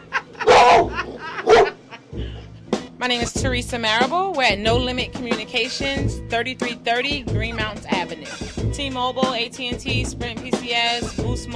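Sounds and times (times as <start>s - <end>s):
laughter: 0.0s - 2.4s
female dog barking: 0.4s - 1.8s
speech: 3.0s - 11.5s.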